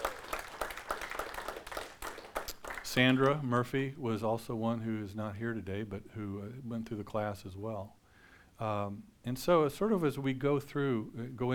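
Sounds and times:
audience applauding: 0:00.0 - 0:03.4
speech: 0:02.9 - 0:08.0, 0:08.6 - 0:11.5.

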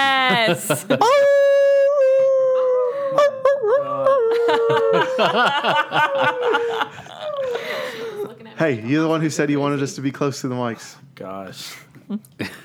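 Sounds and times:
people chuckling and laughing: 0:00.0 - 0:01.8, 0:03.1 - 0:09.8
speech: 0:00.3 - 0:01.4, 0:04.4 - 0:07.2, 0:08.6 - 0:12.6
people imitating howls: 0:01.0 - 0:08.4.

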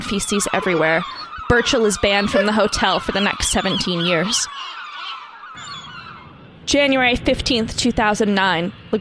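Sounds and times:
flock of geese honking: 0:00.0 - 0:06.2
speech: 0:00.1 - 0:04.8, 0:06.7 - 0:08.9
deeper rumbling wash of noise: 0:05.6 - 0:08.9.

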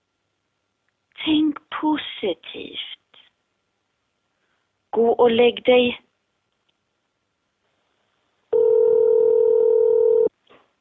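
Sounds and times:
speech: 0:01.2 - 0:03.0, 0:05.0 - 0:06.0
telephone dial tone: 0:08.5 - 0:10.3.

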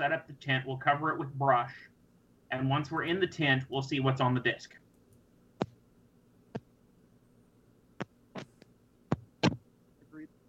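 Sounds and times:
speech: 0:00.0 - 0:04.8
low steady electrical hum from static interference: 0:00.0 - 0:10.4.

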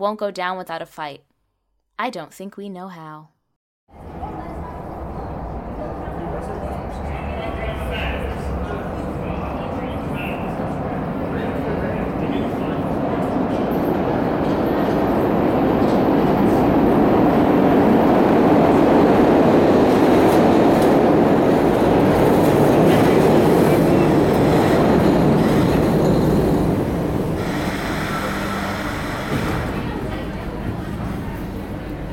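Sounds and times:
speech: 0:00.0 - 0:01.3, 0:02.0 - 0:03.3
Philadelphia subway train rumbling on rails: 0:03.9 - 0:32.1.

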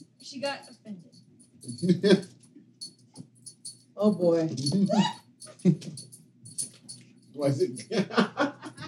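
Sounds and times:
speech: 0:00.4 - 0:00.8, 0:01.7 - 0:02.4, 0:04.0 - 0:06.1, 0:07.4 - 0:08.7
laughter: 0:01.7 - 0:02.3, 0:07.5 - 0:08.8
pet dog whimpering and whining: 0:04.8 - 0:05.2.

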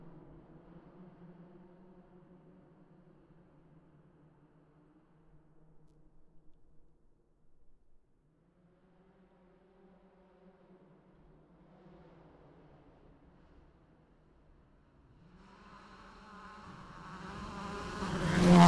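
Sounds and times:
tires being tested with steady buzzing hum and harsh roar: 0:16.1 - 0:18.6.

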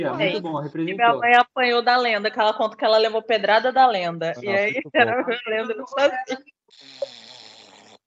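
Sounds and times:
speech: 0:00.0 - 0:07.2
person snoring with rumbling snorts: 0:06.7 - 0:08.0.

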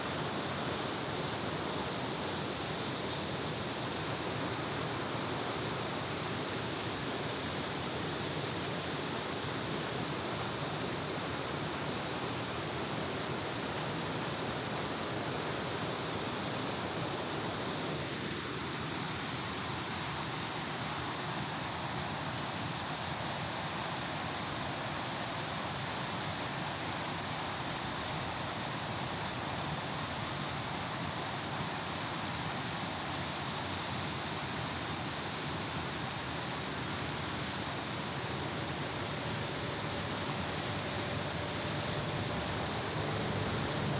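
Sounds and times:
outdoor waterfall roaring: 0:00.0 - 0:43.9.

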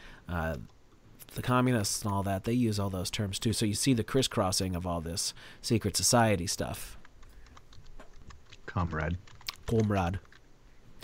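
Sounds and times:
speech: 0:00.3 - 0:07.0, 0:08.7 - 0:10.3
typing on a computer keyboard: 0:06.5 - 0:10.5.

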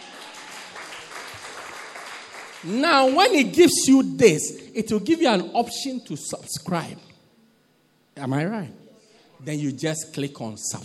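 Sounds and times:
crowd applause with many hands clapping: 0:00.0 - 0:03.6
speech: 0:02.6 - 0:07.1, 0:08.2 - 0:08.8, 0:09.4 - 0:10.8.

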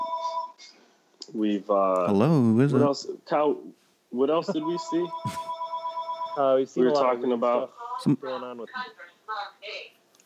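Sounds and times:
speech: 0:01.3 - 0:05.5, 0:06.4 - 0:09.8
people talking loudly: 0:02.1 - 0:02.9
telephone ringing with a warbling electronic tone: 0:04.6 - 0:06.6.

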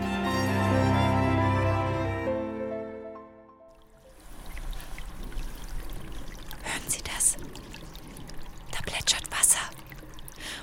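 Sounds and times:
musical tone: 0:00.0 - 0:03.8
small spring-fed stream flowing through a church: 0:03.7 - 0:10.6.

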